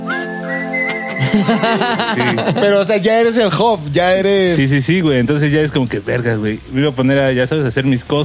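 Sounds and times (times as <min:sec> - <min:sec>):
person whistling a friends' signal call: 0:00.0 - 0:01.4
laughter: 0:00.9 - 0:03.0
speech: 0:01.3 - 0:08.2.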